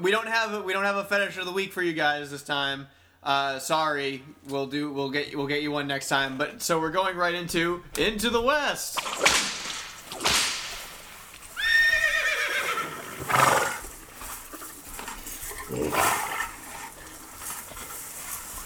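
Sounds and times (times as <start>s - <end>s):
speech: 0.0s - 9.5s
sharp snapping cracks: 8.9s - 11.6s
horse whinnying with a rising quavering cry: 11.5s - 14.7s, 15.3s - 17.4s.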